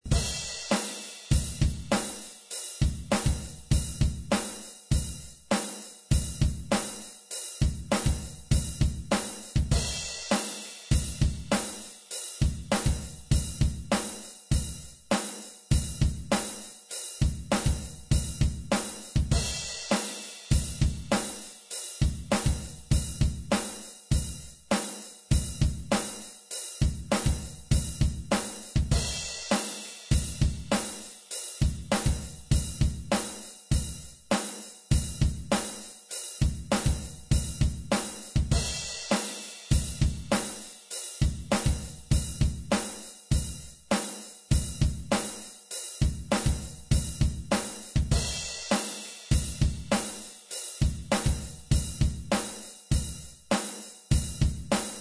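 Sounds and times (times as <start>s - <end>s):
metal rhythm: 0.0s - 55.0s.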